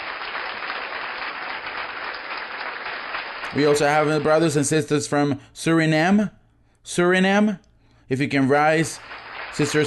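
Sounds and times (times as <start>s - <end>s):
audience applause: 0.0s - 4.7s, 8.8s - 9.8s
speech: 3.5s - 9.8s.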